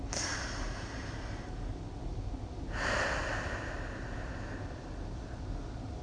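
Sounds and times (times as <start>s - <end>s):
deep breaths during a guided relaxation exercise while lying down: 0.1s - 1.7s, 2.7s - 5.9s.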